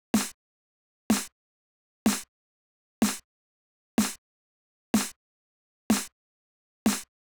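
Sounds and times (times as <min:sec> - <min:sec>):
snare drum in 125 bpm D minor nu disco: 0:00.2 - 0:00.4, 0:01.1 - 0:01.3, 0:02.1 - 0:02.3, 0:03.0 - 0:03.2, 0:04.0 - 0:04.2, 0:05.0 - 0:05.2, 0:05.9 - 0:06.1, 0:06.9 - 0:07.1.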